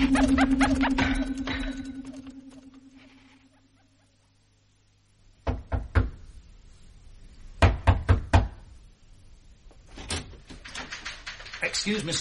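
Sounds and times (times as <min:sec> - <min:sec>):
speech: 0:00.0 - 0:01.9, 0:11.8 - 0:12.2
low humming drone: 0:00.0 - 0:03.9
sharp raps on a door: 0:05.4 - 0:06.2, 0:07.6 - 0:08.6.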